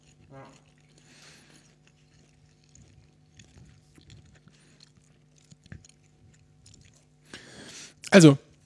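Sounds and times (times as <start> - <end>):
loud wet chewing and lip smacking while eating: 0.0 - 8.6
speech: 8.1 - 8.4.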